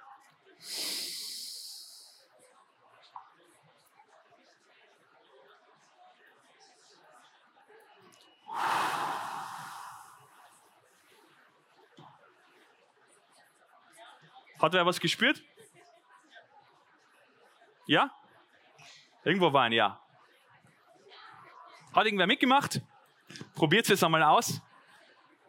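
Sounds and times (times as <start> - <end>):
loud airy exhale through the mouth in a guided breathing exercise: 0.6 - 1.9, 8.5 - 10.4
hissing nasal inhale in a guided breathing exercise: 0.6 - 2.2, 8.5 - 10.5
speech: 14.6 - 15.5, 17.9 - 18.2, 19.2 - 20.0, 22.0 - 22.9, 23.6 - 24.7.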